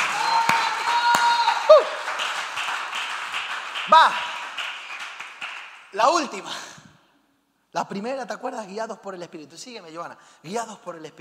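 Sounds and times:
person shouting or whooping: 0:00.0 - 0:02.0
crowd applauding: 0:00.0 - 0:06.0
speech: 0:03.9 - 0:04.3, 0:05.9 - 0:06.7, 0:07.7 - 0:11.2.

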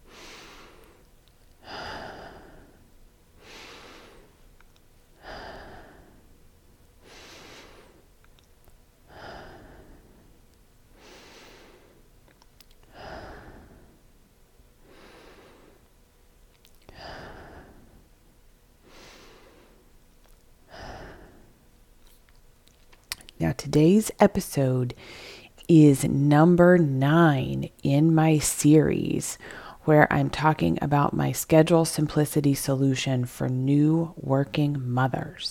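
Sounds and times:
deep breaths in through nose and out through mouth: 0:00.0 - 0:04.5, 0:05.2 - 0:06.3, 0:07.0 - 0:08.2, 0:09.1 - 0:12.1, 0:12.8 - 0:14.1, 0:14.8 - 0:15.9, 0:16.9 - 0:18.1, 0:18.8 - 0:20.0, 0:20.7 - 0:21.6, 0:25.0 - 0:25.5, 0:29.4 - 0:29.8
speech: 0:23.5 - 0:35.4.

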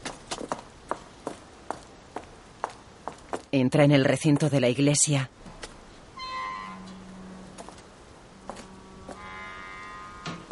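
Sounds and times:
footsteps climbing a steep stone staircase: 0:00.0 - 0:03.5, 0:04.2 - 0:04.7, 0:08.5 - 0:09.2
soft hiss: 0:00.0 - 0:10.4
speech: 0:03.5 - 0:05.4.

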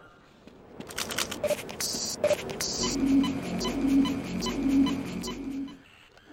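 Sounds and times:
sharp clicks of a video game health and energy charging station: 0:00.8 - 0:03.0
video game health and energy charging station drone: 0:00.9 - 0:05.8
soft pulsing tone: 0:01.4 - 0:05.8.

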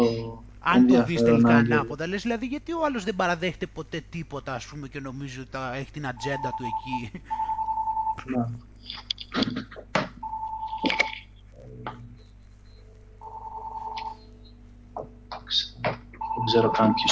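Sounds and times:
speech: 0:00.0 - 0:07.5, 0:08.2 - 0:10.0, 0:15.5 - 0:17.1
mobile phone ringtone with sustained electronic tones: 0:06.2 - 0:08.2, 0:10.2 - 0:11.2, 0:13.2 - 0:14.3, 0:16.2 - 0:17.1.

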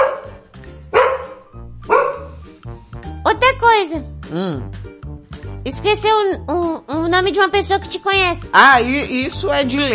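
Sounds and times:
dog barking: 0:00.0 - 0:02.5
speech: 0:03.8 - 0:05.0, 0:05.6 - 0:09.9.

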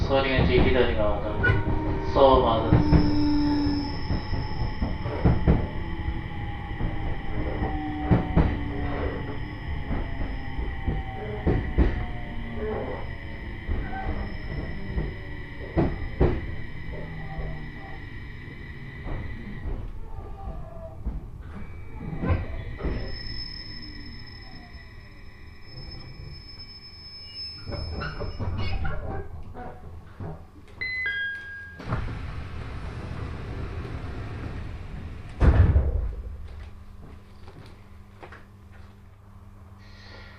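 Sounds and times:
train rolling along the rails heard from inside the carriage: 0:00.0 - 0:30.5, 0:31.8 - 0:37.5
speech: 0:00.1 - 0:03.1
high-pitched train wheel squealing: 0:00.8 - 0:20.7, 0:21.6 - 0:28.8.

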